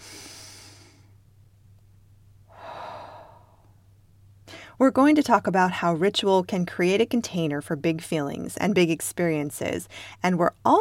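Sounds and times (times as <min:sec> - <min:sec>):
person breathing slowly in a guided breathing exercise: 0:00.0 - 0:01.1, 0:02.5 - 0:03.8
faint steady low hum: 0:00.0 - 0:10.7
speech: 0:04.8 - 0:10.7.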